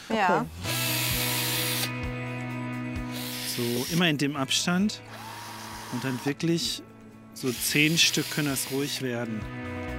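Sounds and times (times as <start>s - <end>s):
speech: 0.1s - 0.7s, 3.6s - 5.3s, 5.9s - 9.8s
small power drill boring tiny holes in thick slices: 0.6s - 1.9s, 3.1s - 4.0s, 5.1s - 6.4s, 7.4s - 9.1s.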